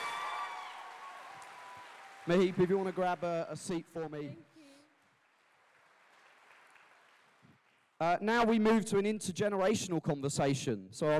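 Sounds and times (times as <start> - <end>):
audience applauding: 0.0 - 8.0
speech: 2.3 - 4.6, 8.0 - 11.1.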